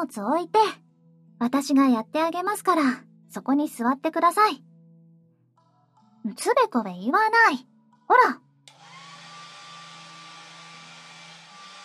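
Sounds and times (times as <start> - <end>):
speech: 0.0 - 0.8, 1.4 - 4.7, 6.2 - 8.4
hair dryer drying hair: 8.7 - 11.8.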